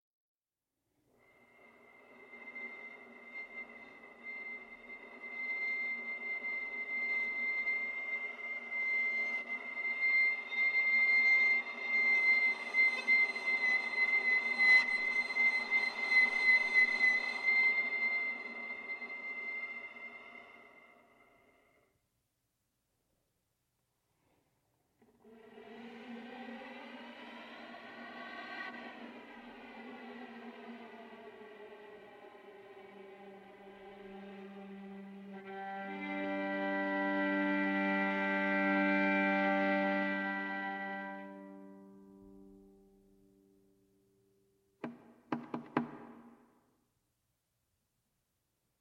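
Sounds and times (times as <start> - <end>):
solo viola piece originally for cello: 1.2 - 21.3, 28.0 - 43.0.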